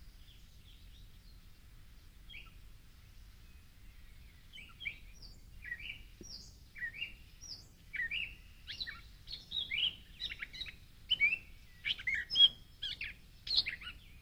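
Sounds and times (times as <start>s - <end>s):
quiet low background hiss: 0.0s - 14.2s
Gray catbird singing mewing, squeaky and chattering notes: 2.3s - 2.6s, 3.5s - 14.2s.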